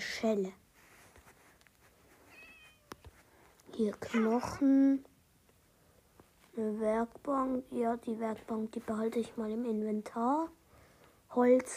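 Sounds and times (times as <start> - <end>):
hum: 0.0 - 11.7
speech: 0.2 - 0.6, 3.8 - 5.1, 6.6 - 10.6, 11.3 - 11.7
cat meowing in video game: 2.3 - 3.0.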